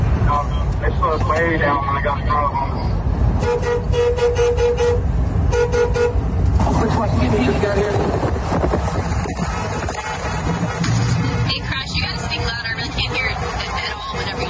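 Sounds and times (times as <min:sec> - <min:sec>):
loud traffic rumble: 0:00.0 - 0:14.4
people talking: 0:00.3 - 0:02.9, 0:06.6 - 0:08.2, 0:10.8 - 0:14.4
car horns honking: 0:03.3 - 0:06.6, 0:09.2 - 0:14.4.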